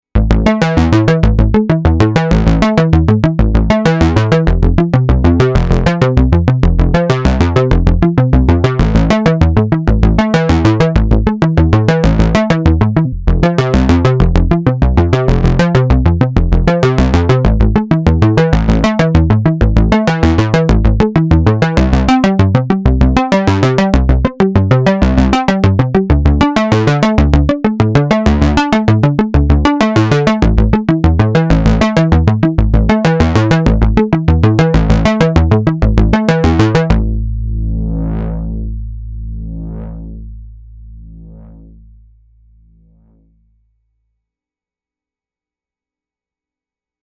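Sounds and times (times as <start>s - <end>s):
MOOG MAVIS FM synthesizer bass with RE 301 stereo chorus: 0.0s - 44.1s.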